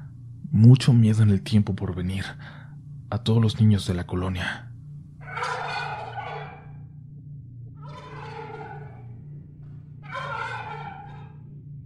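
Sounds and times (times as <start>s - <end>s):
steady low hum: 0.0s - 11.8s
speech: 0.6s - 4.7s
turkey gobbling: 5.2s - 6.8s, 7.8s - 9.1s, 10.0s - 11.4s.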